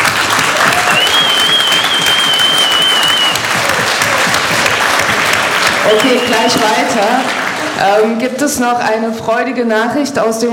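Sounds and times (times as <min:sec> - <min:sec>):
audience applause at a political congress: 0:00.0 - 0:08.2
speech: 0:05.9 - 0:10.5.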